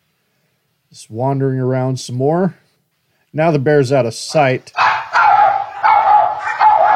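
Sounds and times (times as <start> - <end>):
speech: 0.9 - 2.6, 3.3 - 4.8
dogs barking: 4.7 - 6.9.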